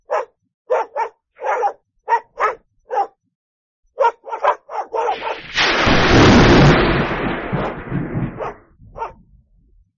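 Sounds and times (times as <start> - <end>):
dogs barking: 0.0 - 3.2, 4.0 - 5.4, 8.4 - 9.2
lightning strikes: 5.1 - 8.6.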